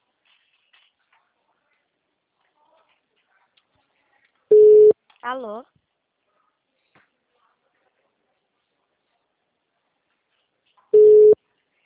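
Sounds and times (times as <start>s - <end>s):
telephone busy tone after a dropped call: 4.5s - 4.9s, 11.0s - 11.4s
speech: 5.2s - 5.8s.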